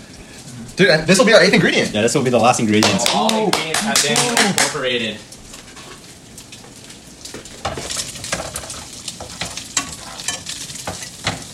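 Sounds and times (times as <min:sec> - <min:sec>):
bacon frying in oil in a pan: 0:00.0 - 0:04.1, 0:04.7 - 0:11.5
speech: 0:00.8 - 0:05.3
utensil stirring and scraping against the pan: 0:05.5 - 0:06.1, 0:07.6 - 0:11.5.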